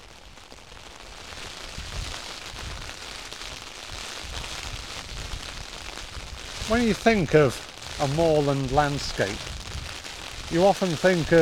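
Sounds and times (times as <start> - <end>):
rain hissing down outdoors on moorland: 0.0 - 11.3
gusty low rumbles: 5.0 - 10.6
speech: 6.7 - 9.5, 10.5 - 11.3.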